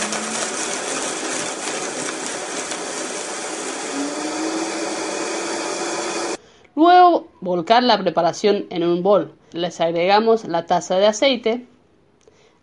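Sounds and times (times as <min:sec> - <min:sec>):
blender whirring as it purees corn kernels with milk: 0:00.0 - 0:06.4
speech: 0:06.8 - 0:11.7.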